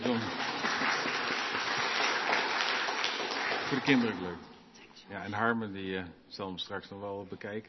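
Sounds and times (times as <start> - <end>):
audience applauding: 0.0 - 4.4
speech: 3.7 - 4.5, 5.1 - 7.6.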